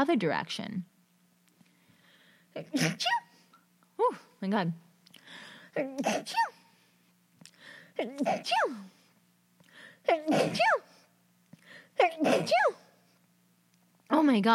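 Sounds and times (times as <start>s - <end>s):
speech: 0.0s - 0.9s, 2.6s - 3.2s, 4.0s - 4.8s, 5.8s - 6.6s, 8.0s - 9.0s, 10.1s - 10.9s, 12.0s - 12.8s, 14.1s - 14.5s
person sneezing: 2.6s - 3.5s, 5.7s - 6.8s, 8.0s - 9.1s, 10.0s - 11.1s, 12.0s - 13.0s.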